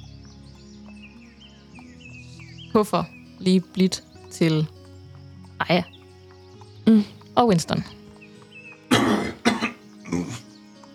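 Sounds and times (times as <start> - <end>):
speech: 2.8 - 4.8, 5.6 - 5.9, 6.9 - 8.0
person coughing harshly: 8.9 - 10.4.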